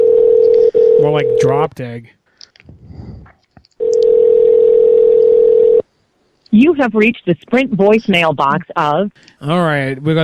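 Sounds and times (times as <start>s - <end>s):
telephone dial tone as a call is placed: 0.0s - 1.4s, 3.8s - 5.8s
speech: 1.0s - 2.2s, 6.5s - 10.2s.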